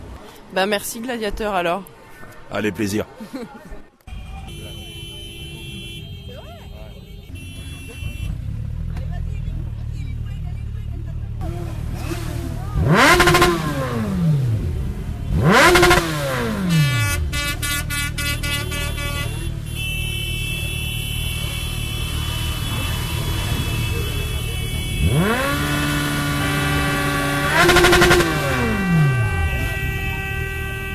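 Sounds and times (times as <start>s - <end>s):
traffic noise: 0.0s - 30.9s
speech: 0.5s - 3.8s
laughter: 2.9s - 4.0s, 7.6s - 8.3s
horn blasts: 4.1s - 8.7s, 12.8s - 30.9s
motorcycles of protesting bikers revving: 4.1s - 30.9s.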